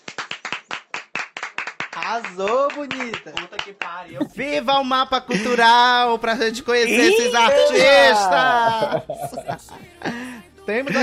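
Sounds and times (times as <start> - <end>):
audience clapping: 0.0 - 3.9
speech: 2.0 - 11.0
laughter: 4.1 - 5.7, 6.9 - 11.0.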